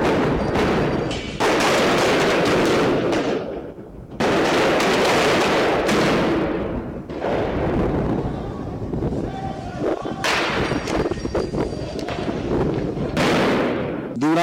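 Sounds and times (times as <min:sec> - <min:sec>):
firecracker and dynamite detonations during street clashes: 0:00.0 - 0:09.1, 0:09.9 - 0:11.3, 0:12.1 - 0:14.1
chaotic crowd during street clashes: 0:07.6 - 0:13.2.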